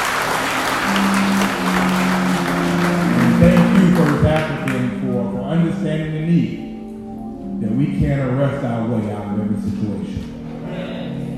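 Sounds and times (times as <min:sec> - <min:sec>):
audience applauding: 0:00.0 - 0:05.1
speech: 0:04.7 - 0:06.7, 0:07.6 - 0:10.4.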